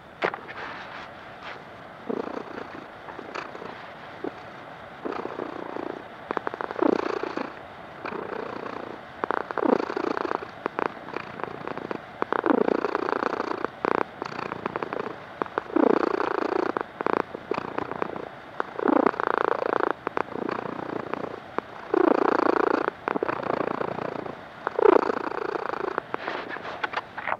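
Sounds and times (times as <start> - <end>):
cat purring: 0.0 - 27.3.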